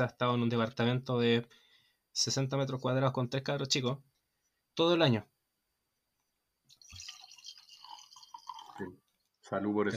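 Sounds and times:
speech: 0.0 - 1.6, 2.2 - 4.1, 4.8 - 5.3, 8.8 - 9.9
drink glugging and trickling from a bottle: 6.7 - 9.4.

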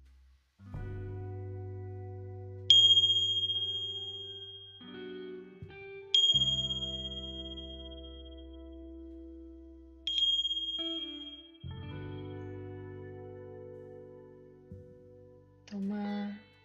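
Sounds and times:
steady low droning tone: 0.7 - 15.8
meditation bells ringing: 2.7 - 4.8, 6.1 - 8.4, 10.1 - 11.6.

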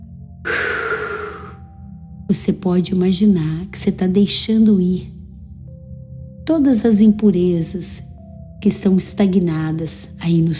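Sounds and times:
long exhale through the mouth during a guided breathing exercise: 0.5 - 1.7
speech: 2.3 - 5.2, 6.5 - 10.5.

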